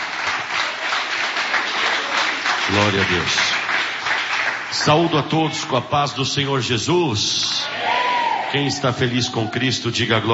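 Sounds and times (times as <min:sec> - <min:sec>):
church congregation applauding loudly: 0:00.0 - 0:05.9
speech: 0:02.7 - 0:03.6, 0:04.7 - 0:07.6, 0:08.5 - 0:10.3.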